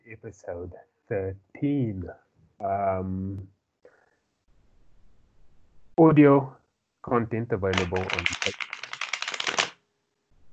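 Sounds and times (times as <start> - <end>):
speech: 0.1 - 3.6, 6.0 - 8.8
deck of playing cards riffle-shuffled: 7.7 - 9.8.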